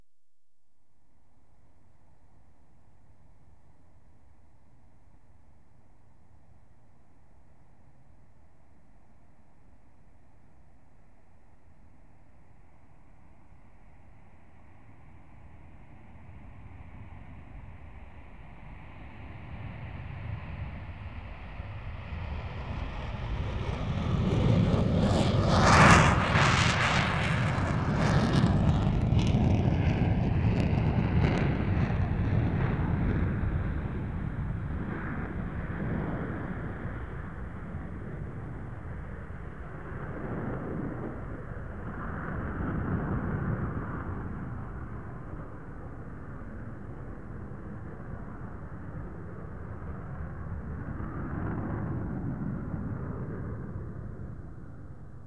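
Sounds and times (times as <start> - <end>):
aircraft taking off: 16.3 - 55.2.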